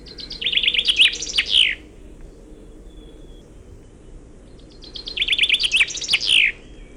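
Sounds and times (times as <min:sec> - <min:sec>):
songbird trilling with Wallonian-song flourish ending: 0:00.0 - 0:03.8, 0:04.6 - 0:06.9
low steady rumble: 0:00.0 - 0:05.2.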